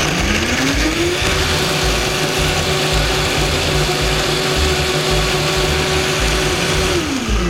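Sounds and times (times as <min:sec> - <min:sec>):
blender grinding roasted tomatillos with no added liquid: 0:00.0 - 0:07.4.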